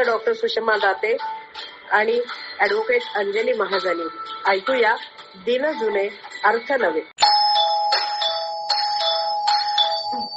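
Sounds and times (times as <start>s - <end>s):
speech: 0.0s - 7.2s
house doorbell ding-dong chimes: 7.2s - 10.3s.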